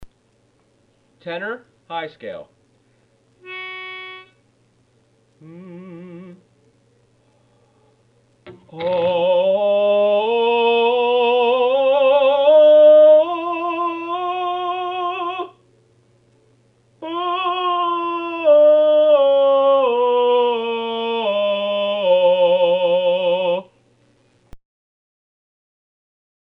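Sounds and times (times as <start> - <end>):
tenor singing a high scale: 3.4 - 4.4, 5.4 - 6.5, 8.7 - 15.6, 17.0 - 23.7.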